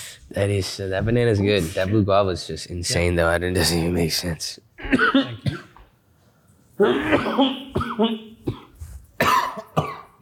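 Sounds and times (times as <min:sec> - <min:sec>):
speech: 0:00.3 - 0:05.6, 0:06.8 - 0:08.6
person coughing harshly: 0:04.8 - 0:05.8, 0:06.8 - 0:10.2
throat clearing: 0:04.8 - 0:05.9, 0:06.8 - 0:10.2.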